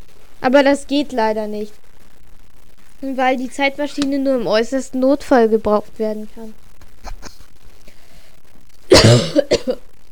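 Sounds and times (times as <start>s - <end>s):
speech: 0.4s - 1.8s, 3.0s - 6.6s, 9.1s - 9.8s
person coughing: 8.9s - 9.8s.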